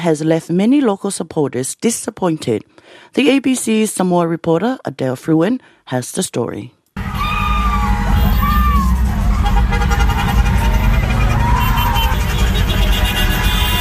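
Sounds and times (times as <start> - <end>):
speech: 0.0 - 6.8
crowd of fans screaming and cheering on the sidelines: 7.0 - 13.7
passing parade car engines rumbling: 7.0 - 13.7
shrill whistles or horns: 7.0 - 13.7.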